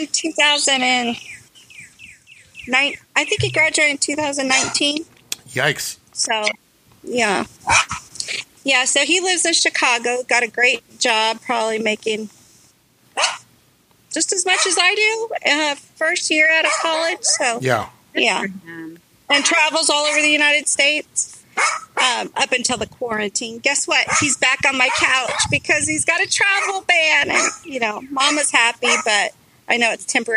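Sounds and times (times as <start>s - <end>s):
speech: 0.0s - 1.4s, 2.6s - 12.4s, 13.2s - 13.4s, 14.1s - 30.3s
dog barking: 7.6s - 8.0s, 13.2s - 13.4s, 14.5s - 14.8s, 16.6s - 17.9s, 20.0s - 20.3s, 21.6s - 22.1s, 24.0s - 25.6s, 26.5s - 29.2s.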